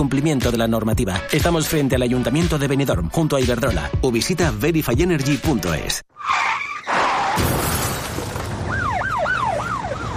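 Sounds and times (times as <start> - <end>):
speech: 0.0 - 6.6
loud car crash impact: 6.9 - 8.8
glass shattering: 7.2 - 8.6
emergency siren wailing: 8.6 - 10.1.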